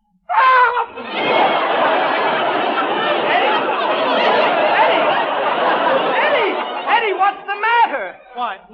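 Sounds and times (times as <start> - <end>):
man screaming: 0.3 - 1.0
laughter: 0.4 - 8.7.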